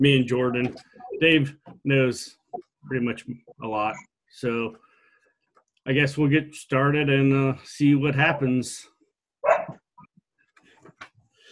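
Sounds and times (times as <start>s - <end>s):
speech: 0.0s - 4.8s, 5.8s - 9.8s
excited dog barking: 9.4s - 9.8s.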